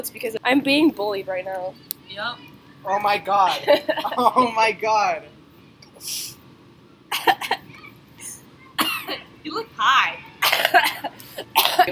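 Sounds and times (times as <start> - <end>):
speech: 0.0 - 5.3, 6.0 - 6.3, 9.1 - 11.8
person coughing into their arm: 8.8 - 9.2, 10.4 - 11.8.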